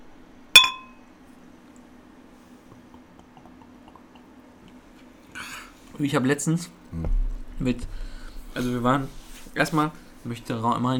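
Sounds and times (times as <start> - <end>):
two glasses clinking in a toast: 0.6 - 1.0
speech: 6.0 - 7.9, 8.6 - 10.9.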